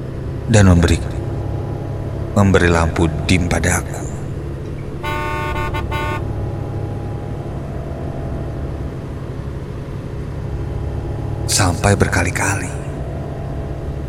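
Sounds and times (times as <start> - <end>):
low rumble of engines and road traffic: 0.0 - 14.0
speech: 0.5 - 1.2, 2.4 - 4.1, 11.6 - 12.7
minibus car horn honking: 4.9 - 6.6.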